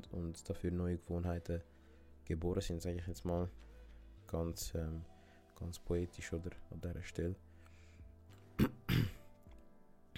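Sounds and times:
speech: 0:00.0 - 0:03.7, 0:04.3 - 0:07.5
quiet breathing: 0:01.6 - 0:02.3, 0:03.5 - 0:06.6, 0:07.4 - 0:08.4
short harsh throat clearing: 0:08.6 - 0:09.2.

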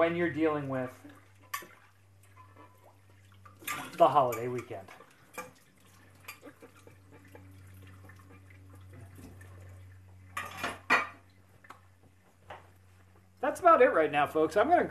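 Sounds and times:
speech: 0:00.0 - 0:01.1, 0:04.0 - 0:05.0, 0:13.4 - 0:14.8
running water: 0:00.0 - 0:12.2
pots and cutlery clinking while dishes are washed: 0:01.4 - 0:02.9, 0:03.5 - 0:07.6, 0:10.3 - 0:11.3.

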